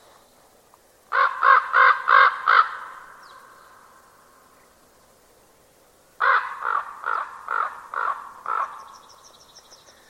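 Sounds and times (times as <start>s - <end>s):
bird giving harsh hoarse caws: 1.1s - 3.1s, 6.2s - 8.9s.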